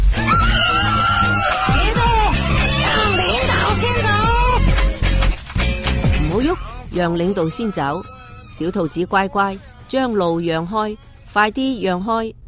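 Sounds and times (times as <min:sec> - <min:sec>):
anguished screaming in a fire: 0:00.1 - 0:04.7, 0:06.6 - 0:09.1
overlapping cries: 0:00.2 - 0:05.1, 0:06.5 - 0:09.1
speech: 0:07.0 - 0:12.4.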